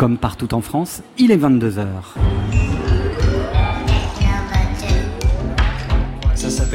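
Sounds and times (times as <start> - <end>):
speech: 0.0 - 2.7, 6.4 - 6.7
radio station jingle with punchy beat, rising tonal lines and percussive accents: 2.2 - 6.7.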